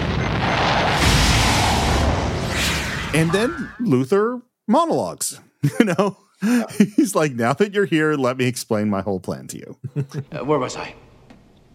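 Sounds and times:
missiles launching in a film action scene: 0.0 - 3.7
speech: 3.1 - 11.0
laughter: 5.6 - 7.2, 9.8 - 10.6.

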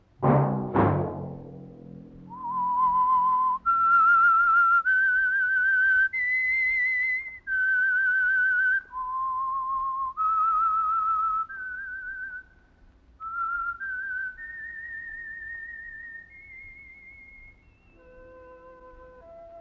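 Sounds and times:
brief crash: 0.2 - 4.1
solo whistled melody: 2.2 - 12.5, 13.2 - 19.5.

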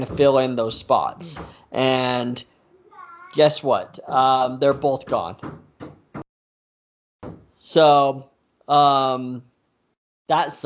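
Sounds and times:
speech: 0.0 - 2.5, 3.3 - 5.6, 7.6 - 9.5, 10.3 - 10.6
child banging on a door: 4.6 - 6.2, 7.2 - 7.6.

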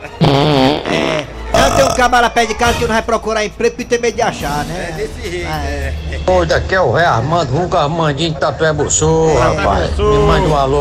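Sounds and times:
voice imitating farting with raspberry bursts: 0.2 - 2.1
speech: 2.0 - 10.8.

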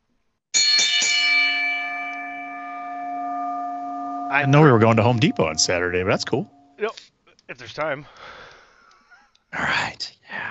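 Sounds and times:
bright bell struck and ringing: 0.6 - 6.8
speech: 4.3 - 8.4.

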